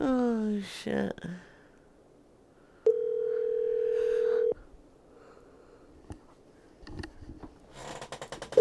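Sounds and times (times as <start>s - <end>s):
speech: 0.6s - 1.5s
phone ringing tone while calling a number: 2.9s - 4.6s
burst of crackly rustle: 6.1s - 8.6s.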